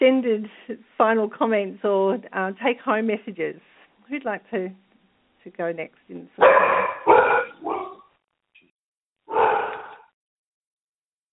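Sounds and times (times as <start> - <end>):
speech: 0.0 - 7.9
dog barking: 6.4 - 8.1, 9.3 - 10.1.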